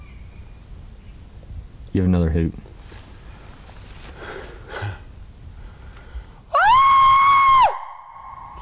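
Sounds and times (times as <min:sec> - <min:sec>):
speech: 0:02.0 - 0:02.7
soft breathing: 0:02.9 - 0:06.4
person imitating a Sasquatch scream call: 0:06.5 - 0:08.5.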